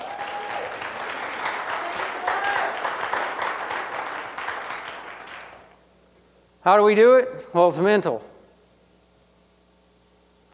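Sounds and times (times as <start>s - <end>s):
people whooping: 0.0s - 5.6s
audience applauding: 0.0s - 5.8s
speech: 6.6s - 8.3s.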